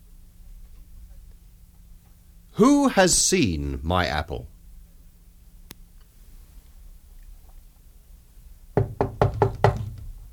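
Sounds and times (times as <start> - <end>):
speech: 2.6 - 4.5
firm knocking on a door: 8.8 - 10.2.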